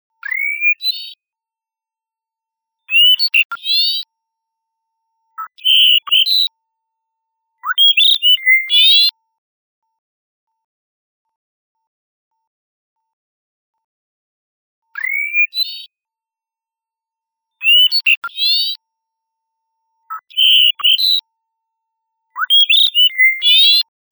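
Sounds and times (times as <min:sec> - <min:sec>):
song of an endangered species: 0:00.2 - 0:01.2, 0:02.9 - 0:04.1, 0:05.4 - 0:06.5, 0:07.6 - 0:09.1, 0:15.0 - 0:15.9, 0:17.6 - 0:18.8, 0:20.1 - 0:21.2, 0:22.4 - 0:23.9.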